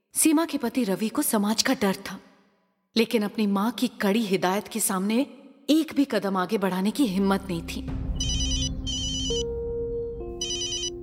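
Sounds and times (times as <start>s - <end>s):
speech: 0.2s - 2.3s, 2.9s - 8.0s
telephone ringing with electronic warbling tones: 8.2s - 9.4s, 10.4s - 11.0s.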